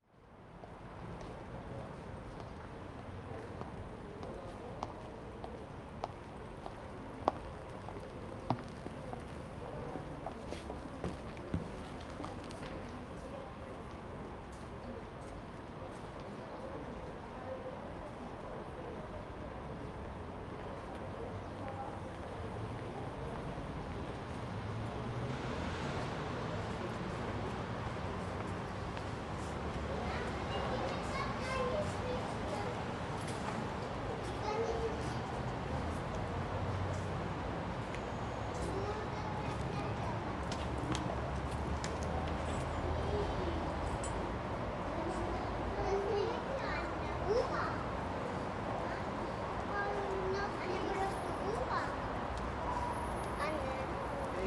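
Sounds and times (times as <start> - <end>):
daytime interior subway station ambience in Vienna Austria: 0.2 - 54.3.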